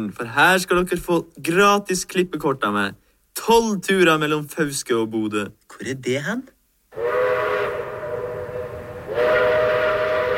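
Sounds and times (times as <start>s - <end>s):
speech: 0.0s - 6.5s
loud sustained train whistle blasts: 6.9s - 10.3s.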